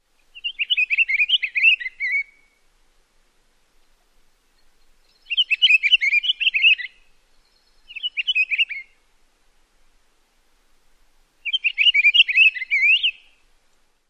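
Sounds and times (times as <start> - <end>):
pine grosbeak singing: 0.2 - 2.5, 4.5 - 9.0, 11.4 - 13.3.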